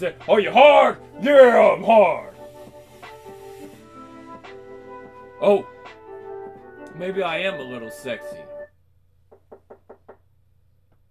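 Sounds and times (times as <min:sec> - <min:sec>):
speech: 0:00.0 - 0:02.3, 0:05.4 - 0:05.7, 0:07.0 - 0:08.5
knocks on a door: 0:09.3 - 0:10.2.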